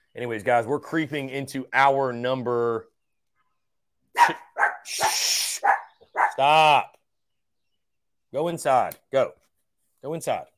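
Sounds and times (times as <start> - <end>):
speech: 0.2 - 2.9, 4.2 - 5.3, 6.4 - 7.0, 8.3 - 9.4, 10.0 - 10.5
dog barking: 4.2 - 6.5.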